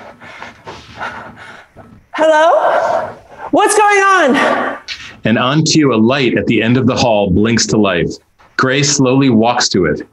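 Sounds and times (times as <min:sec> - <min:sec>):
woman panting frantically in a dark hallway: 0:00.0 - 0:03.6
speech: 0:02.2 - 0:10.1.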